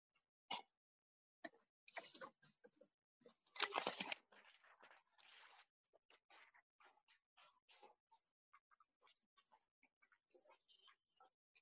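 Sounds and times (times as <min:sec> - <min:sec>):
sheet of paper rustling and crinkling: 0:03.5 - 0:06.5.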